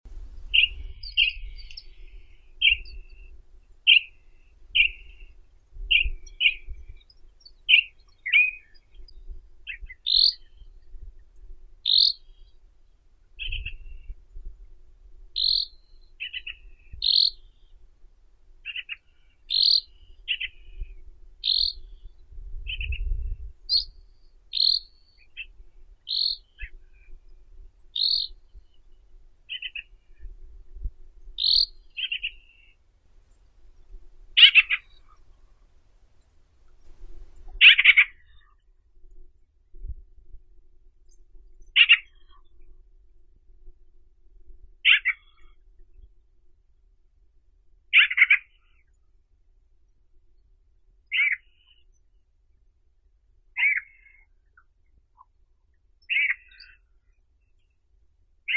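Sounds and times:
Mycerobas carnipes grosbeak calling: 0:00.5 - 0:10.8, 0:11.8 - 0:12.7, 0:15.4 - 0:17.7, 0:18.6 - 0:20.8, 0:21.4 - 0:27.2, 0:27.8 - 0:28.9, 0:29.5 - 0:30.2, 0:31.4 - 0:32.8, 0:33.4 - 0:38.6, 0:41.7 - 0:42.5, 0:44.8 - 0:45.4, 0:47.9 - 0:48.7, 0:51.1 - 0:51.8, 0:53.6 - 0:54.3, 0:56.0 - 0:56.8.

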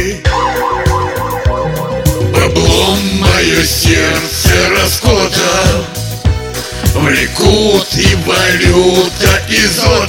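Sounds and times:
regular heavy beat of musical accompaniment: 0:00.0 - 0:10.0
siren wailing in the capital: 0:00.2 - 0:03.1
speech: 0:02.9 - 0:05.7, 0:07.0 - 0:10.0.

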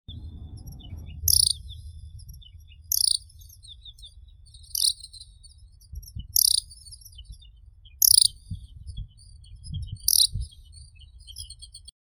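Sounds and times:
Japanese skylark Alauda japonica singing: 0:00.3 - 0:11.9.

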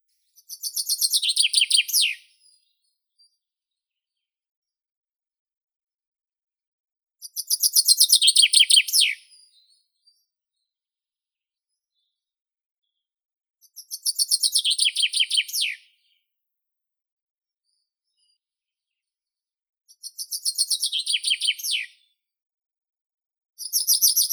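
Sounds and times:
Fringilla coelebs chaffinch singing: 0:00.4 - 0:02.2, 0:07.2 - 0:09.2, 0:13.6 - 0:15.8, 0:20.0 - 0:21.9.

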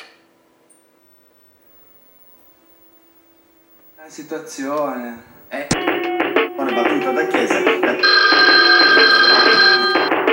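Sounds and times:
speech: 0:04.0 - 0:09.9
telephone bell ringing with bright metallic trilling: 0:05.8 - 0:10.3.

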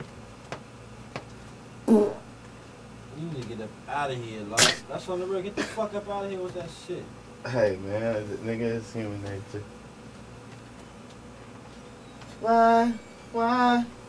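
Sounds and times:
brief buzzy fart: 0:01.9 - 0:02.3, 0:04.6 - 0:04.8
sharp noise: 0:01.9 - 0:02.3, 0:04.6 - 0:04.9
speech: 0:03.6 - 0:09.8, 0:12.4 - 0:14.0.

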